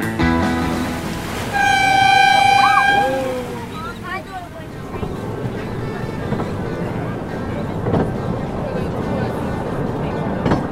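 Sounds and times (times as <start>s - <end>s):
small red tourist train rumbling along the long wooden Busselton jetty: 0.2s - 10.7s
small red tourist train horn toot: 1.4s - 4.0s
faint indistinct voices: 1.5s - 10.7s.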